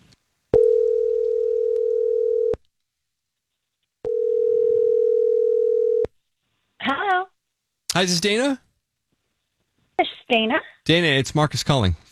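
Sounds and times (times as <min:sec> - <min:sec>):
telephone line tone while placing a call: 0:00.6 - 0:02.6, 0:04.1 - 0:06.1
speech: 0:08.0 - 0:08.6, 0:10.3 - 0:12.0.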